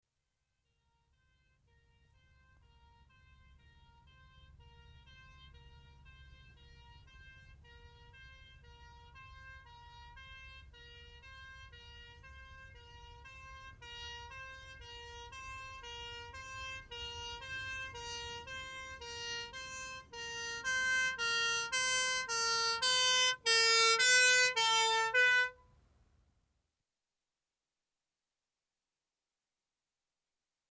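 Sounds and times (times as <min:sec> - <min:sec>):
arriving ambulance two-tone siren: 0:02.1 - 0:25.6.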